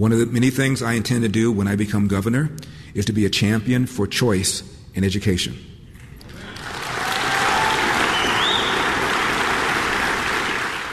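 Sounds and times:
speech: 0.0 - 5.7
church crowd applause after a speech by a candidate for governor: 6.2 - 10.9.

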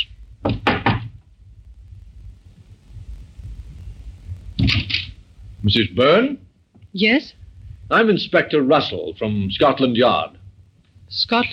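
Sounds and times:
low rumble: 0.0 - 11.5
police inspector knocking on a flat door: 0.4 - 1.2
speech: 5.6 - 10.4, 11.1 - 11.5.

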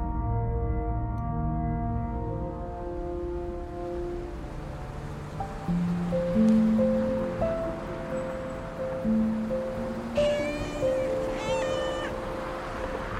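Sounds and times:
low sustained musical tones: 0.0 - 13.1
steady wash of ambient noise: 0.0 - 13.1
cat giving short rising meows: 10.2 - 12.2.

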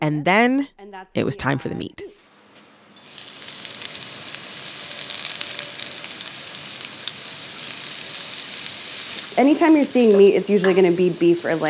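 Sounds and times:
speech: 0.0 - 2.2, 9.4 - 11.6
onion and garlic frying in a pot: 3.0 - 11.6.

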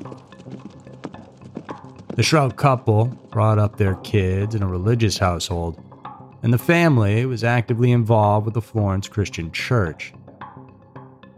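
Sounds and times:
horse hooves clip-clopping: 0.0 - 5.0
speech: 2.2 - 10.2.

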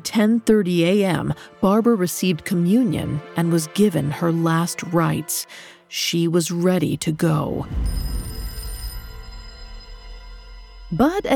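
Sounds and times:
speech: 0.0 - 8.2, 10.9 - 11.3
faint low rumble: 7.6 - 11.3
telephone ringing with a metallic bell tone: 7.8 - 9.9.

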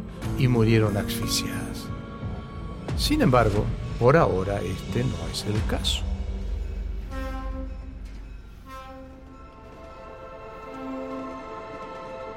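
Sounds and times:
speech: 0.4 - 2.0, 3.0 - 6.1
old train travelling at night rumbling: 2.9 - 12.3
sustained horn-like tones: 7.0 - 12.3.

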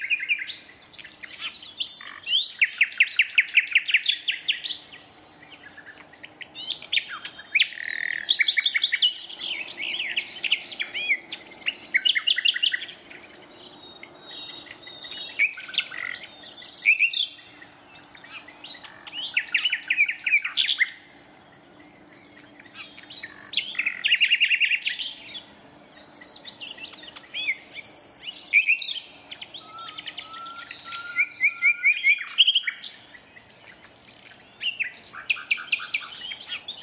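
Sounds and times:
nightingale singing in a thorn thicket in north Dorset: 0.0 - 36.8.

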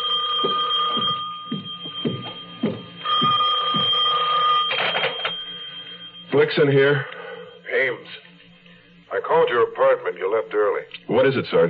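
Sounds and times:
telephone bell ringing: 0.0 - 8.0
low thumping noises: 0.4 - 4.2
speech: 6.4 - 7.2, 9.2 - 11.6.

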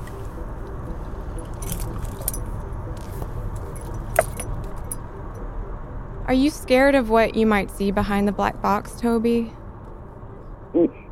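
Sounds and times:
low engine-like rumble: 0.0 - 11.1
keys jingling inside a car: 1.4 - 5.0
speech: 6.3 - 9.6.

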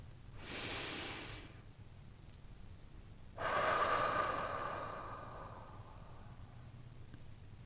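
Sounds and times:
deep breath in and out: 0.4 - 1.6, 3.4 - 6.8.

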